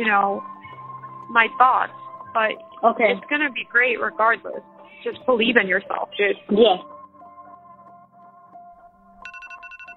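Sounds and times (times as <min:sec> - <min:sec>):
speech: 0:00.0 - 0:00.6, 0:01.3 - 0:06.9
electronic phone alarm melody: 0:09.2 - 0:09.9
brighter higher repeating phone alarm beeping: 0:09.3 - 0:09.9.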